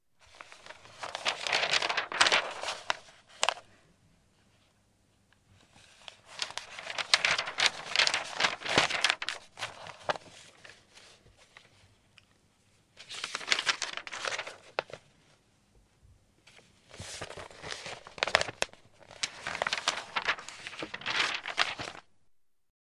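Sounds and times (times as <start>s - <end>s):
magazine pages flipped: 0.2s - 3.6s, 5.8s - 11.8s, 13.0s - 15.0s, 16.5s - 22.1s.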